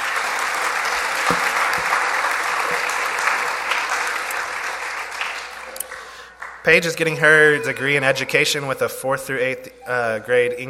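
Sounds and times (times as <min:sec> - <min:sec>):
audience applause: 0:00.0 - 0:06.9
speech: 0:06.6 - 0:10.6.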